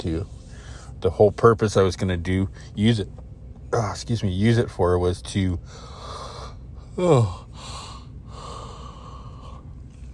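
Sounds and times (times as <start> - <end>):
speech: 0.0 - 0.4, 1.0 - 6.0, 7.0 - 7.8
person yawning: 6.9 - 9.0.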